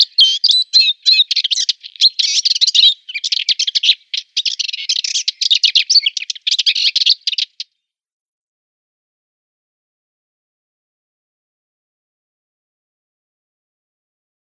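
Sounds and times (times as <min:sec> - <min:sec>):
subalpine warbler singing a rapid scratchy warble: 0:00.0 - 0:07.7.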